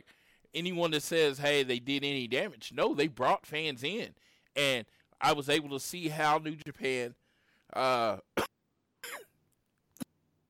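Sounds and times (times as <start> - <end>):
speech: 0.5 - 8.3
person coughing: 8.4 - 9.4.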